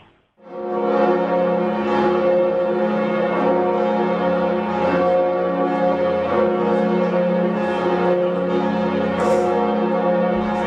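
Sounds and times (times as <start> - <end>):
church bells pealing at a basilica: 0.4 - 10.6.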